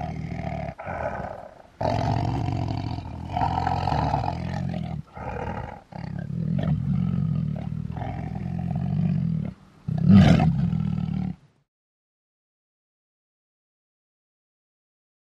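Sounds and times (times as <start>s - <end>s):
tiger roars: 0.0s - 11.4s.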